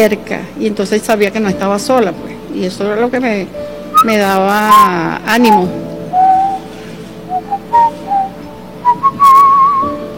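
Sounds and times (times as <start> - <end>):
speech: 0.0 - 5.9
person whistling a short tune: 5.5 - 6.7, 7.3 - 10.0.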